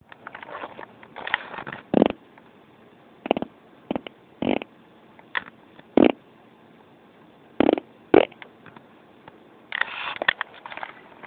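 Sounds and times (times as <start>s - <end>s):
fart: 1.9s - 2.2s, 3.3s - 4.7s, 6.0s - 6.2s, 7.6s - 8.4s.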